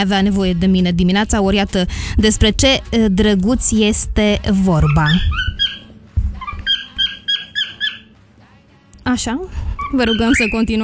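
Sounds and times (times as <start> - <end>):
speech: 0.0 - 5.5, 9.1 - 10.8
two yellow parrots calling: 4.8 - 8.2, 9.7 - 10.8.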